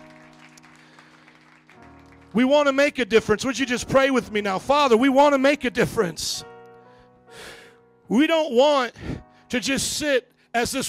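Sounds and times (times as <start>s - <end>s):
church audience clapping hands in praise: 0.0s - 2.8s
speech: 2.3s - 6.5s, 8.1s - 10.8s.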